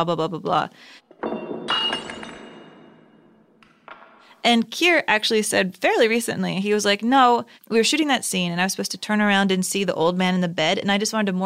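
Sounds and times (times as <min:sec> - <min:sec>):
speech: 0:00.0 - 0:01.0, 0:04.4 - 0:11.4
wine glass shattering: 0:01.1 - 0:03.9
wine glass toppling with a dull knock: 0:01.1 - 0:04.3.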